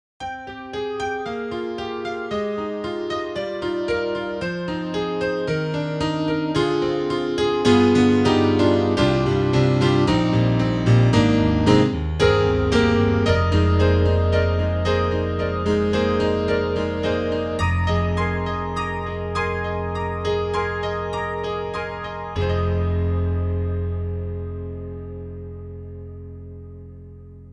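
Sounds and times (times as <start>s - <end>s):
Yamaha EX5 piano for ballads: 0.2s - 27.5s.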